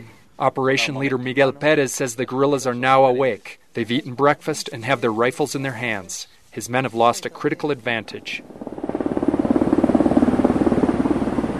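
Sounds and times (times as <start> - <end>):
speech: 0.0 - 8.7
helicopter hovering above jungle treetops: 7.1 - 11.5.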